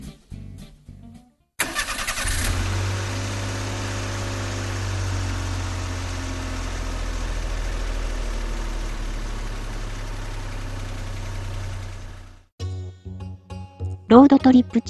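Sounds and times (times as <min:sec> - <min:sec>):
car engine starting and idling: 0:01.6 - 0:12.5
speech: 0:14.1 - 0:14.8.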